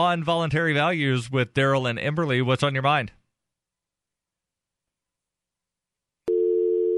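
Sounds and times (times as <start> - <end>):
speech: 0.0 - 3.2
telephone busy signal after a caller hangs up: 6.3 - 6.9.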